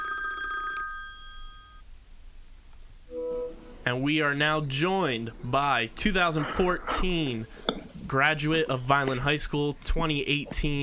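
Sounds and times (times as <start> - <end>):
telephone ringing with a bright trilling electronic tone: 0.0 - 1.8
speech: 3.9 - 10.8.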